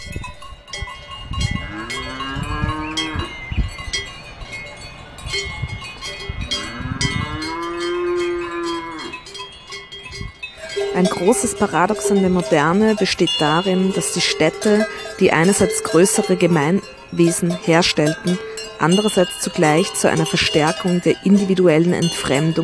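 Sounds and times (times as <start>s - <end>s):
cowbells clanging on grazing cows: 0.0s - 22.6s
cows mooing: 1.5s - 3.4s, 6.4s - 9.3s, 10.6s - 22.6s
speech: 11.0s - 22.6s.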